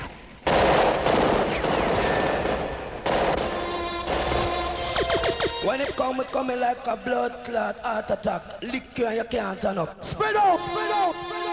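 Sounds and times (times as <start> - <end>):
dense gunfire sound effect of rapid automatic weapon bursts: 0.5 - 5.7
speech: 6.1 - 11.4.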